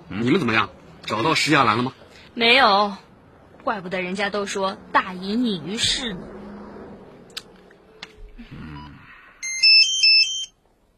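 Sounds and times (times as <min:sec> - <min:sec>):
speech: 0:00.1 - 0:06.4
mobile phone ringtone with electronic melody of beeping notes: 0:09.4 - 0:10.6.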